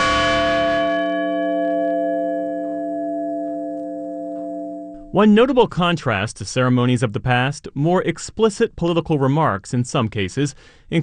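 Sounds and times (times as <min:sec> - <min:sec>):
single deep memorial bell ringing in Shanksville: 0:00.0 - 0:05.6
speech: 0:05.1 - 0:11.0.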